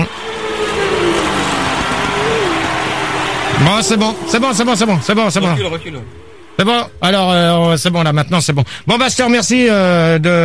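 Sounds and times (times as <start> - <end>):
racing car engine running in the paddock: 0.0 - 7.5
speech: 3.6 - 10.4.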